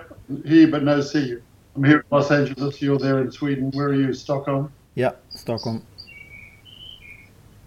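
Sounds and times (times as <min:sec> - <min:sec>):
low steady room hum: 0:00.0 - 0:07.6
speech: 0:00.3 - 0:05.9
bird chirping: 0:02.4 - 0:07.6.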